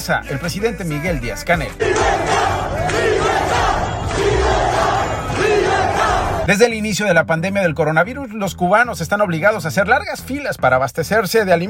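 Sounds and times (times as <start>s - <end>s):
speech: 0.0s - 3.5s, 6.4s - 11.6s
thousands of protesters chanting against the government in the streets of Cuba: 1.8s - 6.5s.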